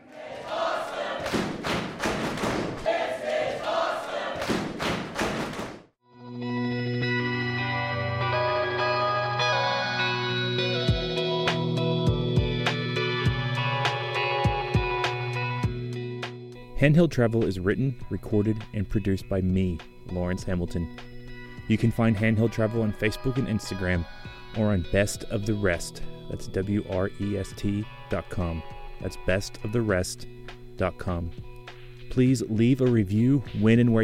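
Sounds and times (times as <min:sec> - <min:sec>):
wrestling crowd roaring and cheering: 0:00.0 - 0:05.5
heavy thuds: 0:01.2 - 0:02.9
steady synth-heavy music track with rhythmic hits: 0:06.1 - 0:16.6
speech: 0:16.8 - 0:21.1, 0:21.7 - 0:31.5, 0:32.1 - 0:34.0.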